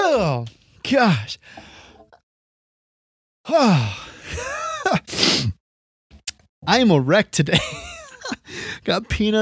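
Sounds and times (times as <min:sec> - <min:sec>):
speech: 0:00.2 - 0:01.7, 0:03.5 - 0:05.6, 0:06.6 - 0:09.4
person sneezing: 0:05.1 - 0:05.6.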